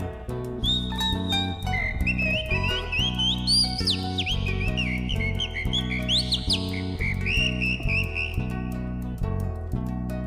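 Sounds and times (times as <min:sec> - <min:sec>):
instrumental music with a rhythmic bass and chords: 0:00.0 - 0:10.2
person whistling an imitation of calandria mockingbird song: 0:00.6 - 0:08.6.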